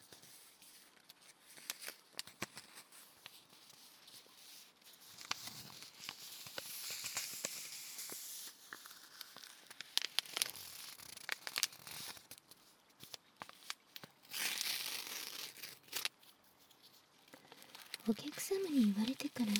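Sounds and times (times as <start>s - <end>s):
paper tea bag wrapper rustling and crinkling: 0.0s - 19.5s
paper tea bag wrapper tearing: 5.2s - 12.4s, 14.2s - 16.2s
speech: 18.1s - 19.5s.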